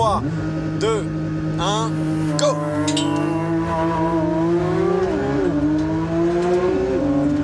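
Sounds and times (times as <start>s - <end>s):
sports car engine accelerating from a launch-control start: 0.0s - 7.4s
speech: 0.2s - 3.0s.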